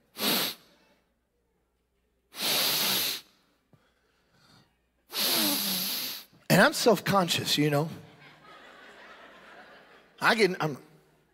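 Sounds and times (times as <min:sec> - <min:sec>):
voice imitating an old farmer sniffing the air: 0:00.1 - 0:00.7, 0:02.3 - 0:03.3, 0:05.1 - 0:06.4
faint breath: 0:02.3 - 0:06.3
speech: 0:06.6 - 0:08.0, 0:10.2 - 0:10.9
laughter: 0:08.0 - 0:10.6.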